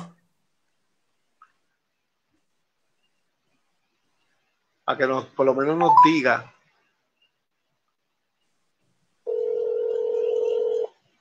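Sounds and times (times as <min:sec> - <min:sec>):
speech: 0:04.9 - 0:06.6
outgoing phone call ringing tone: 0:05.8 - 0:06.2, 0:09.3 - 0:10.9.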